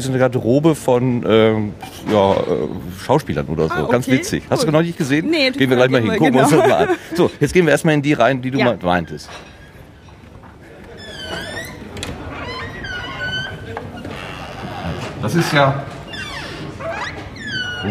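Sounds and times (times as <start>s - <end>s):
speech: 0.0s - 9.5s, 15.2s - 15.9s
laughter: 5.6s - 7.5s
door creaking open with high wavering squeaks: 8.6s - 17.8s.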